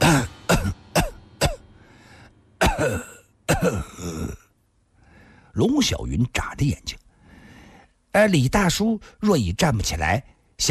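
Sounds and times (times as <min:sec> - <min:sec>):
person coughing: 0:00.0 - 0:01.6, 0:02.6 - 0:04.4
speech: 0:02.8 - 0:04.4, 0:05.6 - 0:07.0, 0:08.2 - 0:10.7
wheezy breathing: 0:05.0 - 0:05.6, 0:07.1 - 0:08.0.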